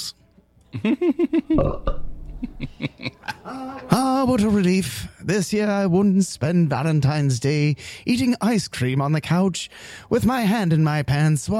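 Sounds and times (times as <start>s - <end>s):
laughter: 0.7s - 1.6s, 2.3s - 4.4s
speech: 0.7s - 11.5s
loud belch: 1.5s - 2.2s.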